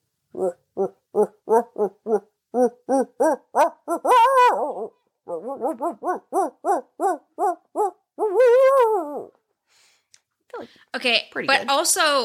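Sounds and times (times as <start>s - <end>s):
speech: 0.3s - 1.0s, 11.0s - 12.2s
person imitating barred owl hoots: 0.3s - 9.4s.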